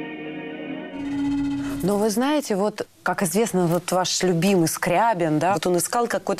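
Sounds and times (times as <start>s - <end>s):
sustained layered musical tones with delay repeats: 0.9s - 2.4s
speech: 2.1s - 6.3s.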